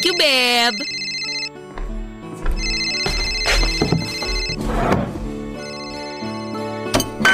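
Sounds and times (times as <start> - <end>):
phone ringtone playing a melodic tune signalling an incoming call: 0.0 - 1.6, 2.5 - 4.6, 5.6 - 7.2.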